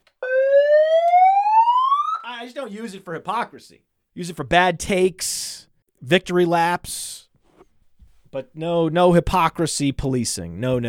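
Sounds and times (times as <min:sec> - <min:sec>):
siren rising in pitch: 0:00.2 - 0:02.3
speech: 0:02.4 - 0:07.2, 0:08.3 - 0:10.8.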